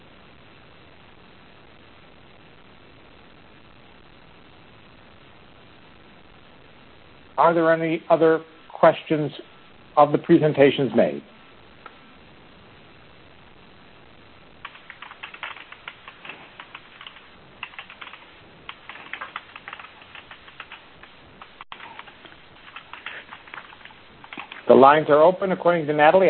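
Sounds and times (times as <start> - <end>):
faint hiss: 0.0 - 26.2
speech: 7.4 - 11.4, 24.8 - 26.2
several people typing on computer keyboards in a meeting chat: 14.6 - 24.9.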